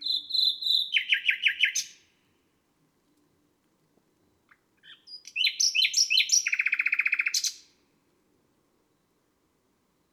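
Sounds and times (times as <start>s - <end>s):
Common nightingale song: 0.0s - 2.2s, 4.2s - 7.8s.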